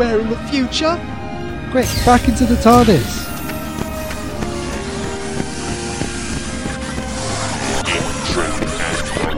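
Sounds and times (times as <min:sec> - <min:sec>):
speech: 0:00.0 - 0:03.3
hovering security drones whirring and humming: 0:01.8 - 0:09.2.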